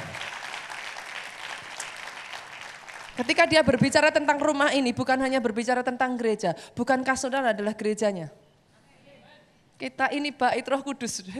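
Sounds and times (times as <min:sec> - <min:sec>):
audience applauding: 0:00.0 - 0:03.8
speech: 0:03.2 - 0:08.4, 0:09.8 - 0:11.3.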